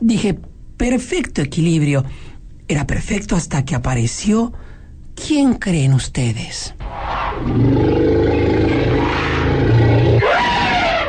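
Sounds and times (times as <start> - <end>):
speech: 0.1 - 6.8, 7.4 - 8.0
loud elephant trumpeting: 6.8 - 11.0.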